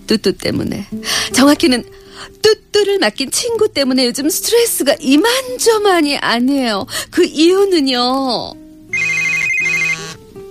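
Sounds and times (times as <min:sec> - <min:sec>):
speech: 0:00.1 - 0:08.6
phone ringtone for an incoming call: 0:08.9 - 0:10.2.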